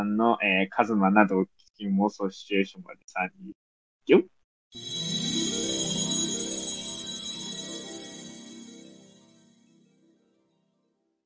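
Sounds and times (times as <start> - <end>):
speech: 0.2 - 5.2
phone ringtone melody for an incoming call: 4.8 - 9.6.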